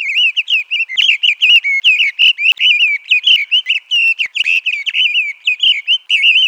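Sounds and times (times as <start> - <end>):
bird song: 0.0 - 6.4.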